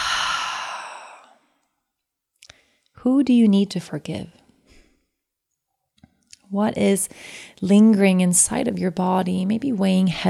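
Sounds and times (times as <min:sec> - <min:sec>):
deep breath exhaled through the mouth: 0:00.0 - 0:01.4
speech: 0:03.0 - 0:04.4, 0:06.5 - 0:10.2.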